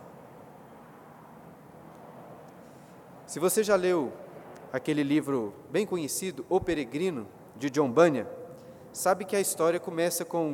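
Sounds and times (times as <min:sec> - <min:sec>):
airplane passing overhead: 0:00.0 - 0:05.8
speech: 0:03.3 - 0:08.4, 0:09.0 - 0:10.5.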